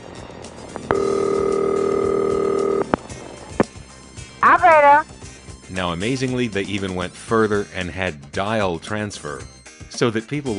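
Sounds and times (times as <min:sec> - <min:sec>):
buzzy electronic ring tone from a Centrex telephone exchange: 0:00.8 - 0:03.0
speech: 0:05.8 - 0:10.5.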